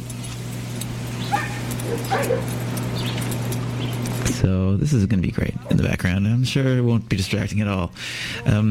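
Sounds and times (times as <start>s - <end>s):
steady low electrical hum: 0.0s - 8.6s
dog barks and yips: 1.2s - 2.6s
speech: 1.9s - 2.7s, 4.4s - 8.6s.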